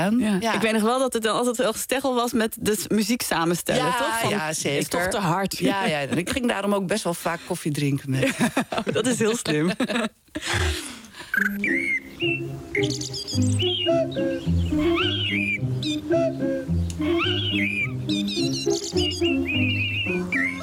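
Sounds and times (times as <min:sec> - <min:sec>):
speech: 0:00.0 - 0:20.6
laughter: 0:03.8 - 0:06.5, 0:08.1 - 0:11.2
bird-like whistled chirps and trills: 0:11.3 - 0:20.6
musical jingle with steady low bass notes: 0:12.3 - 0:20.5.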